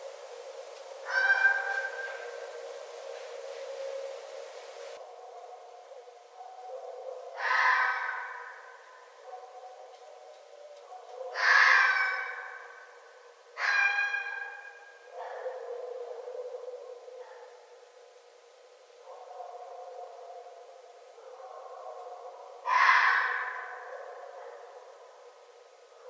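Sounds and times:
steady background noise: 0:00.0 - 0:26.0
red fox wailing cries: 0:01.0 - 0:02.5, 0:07.4 - 0:08.6, 0:11.3 - 0:12.6, 0:13.6 - 0:14.7, 0:22.6 - 0:23.9.

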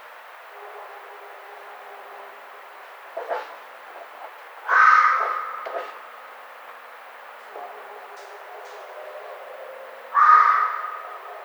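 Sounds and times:
steady background hiss: 0:00.0 - 0:11.4
red fox giving a harsh hoarse scream: 0:10.1 - 0:11.3.

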